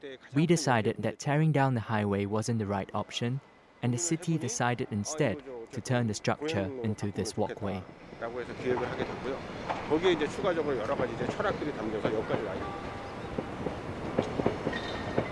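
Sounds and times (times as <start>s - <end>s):
speech: 0.0s - 12.9s
train rumbling past through a rail yard in Seoul: 7.8s - 15.3s.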